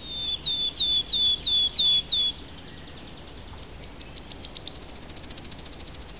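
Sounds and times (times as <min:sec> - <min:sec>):
Phylloscopus sibilatrix singing: 0:00.0 - 0:06.1.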